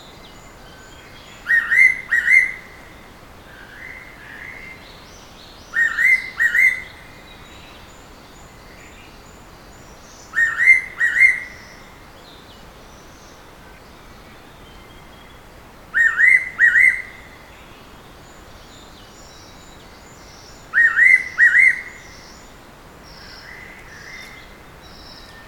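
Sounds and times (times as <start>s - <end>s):
bird: 0.0s - 3.0s, 5.7s - 25.4s.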